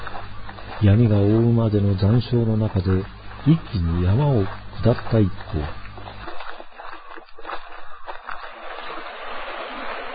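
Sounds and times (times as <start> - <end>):
speech: 0.8 - 5.8
splashy river water surges: 7.4 - 10.1
river rushing over rapids: 8.5 - 10.1.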